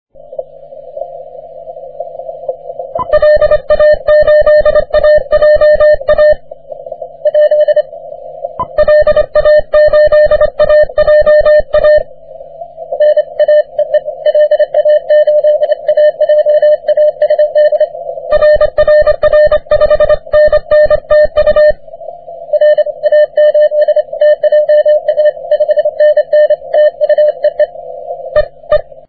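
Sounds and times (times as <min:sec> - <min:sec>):
40m band CW morse code: 0:03.0 - 0:06.4, 0:07.2 - 0:07.9, 0:08.6 - 0:12.1, 0:12.9 - 0:21.8, 0:22.5 - 0:28.9.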